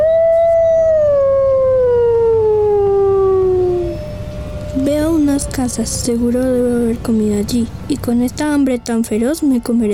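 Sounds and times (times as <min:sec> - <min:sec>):
wolf howling: 0:00.0 - 0:07.0
speech: 0:05.6 - 0:09.9.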